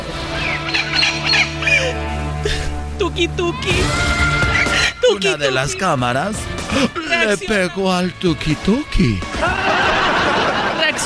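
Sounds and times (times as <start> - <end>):
injured parakeet squawking: 0.3 - 2.0, 4.2 - 6.0
speech: 3.2 - 4.2, 5.1 - 9.6
laughter: 4.6 - 5.9, 6.6 - 7.8, 9.0 - 11.0.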